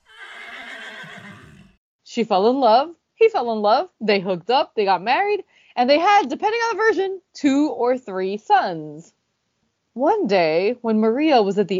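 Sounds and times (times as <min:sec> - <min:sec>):
horse neighing in a shrill whinny: 0:00.0 - 0:01.8
speech: 0:02.2 - 0:09.2, 0:10.0 - 0:11.7.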